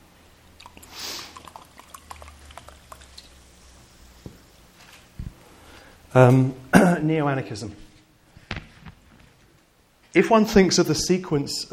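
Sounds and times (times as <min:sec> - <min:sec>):
water pouring into a glass: 0:00.6 - 0:03.4
speech: 0:06.1 - 0:07.8, 0:10.2 - 0:11.7.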